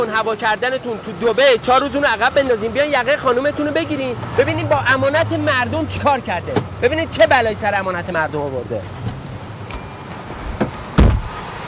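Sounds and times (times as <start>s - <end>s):
speech: 0.0s - 9.0s
silver car door shutting with a solid low thud: 6.5s - 6.8s, 8.9s - 11.4s.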